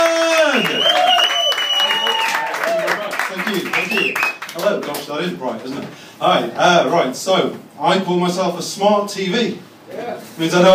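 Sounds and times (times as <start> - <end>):
scattered voices cheering with high whoops: 0.0 - 3.1
lively crowd clapping: 0.0 - 5.6
speech: 5.2 - 10.7.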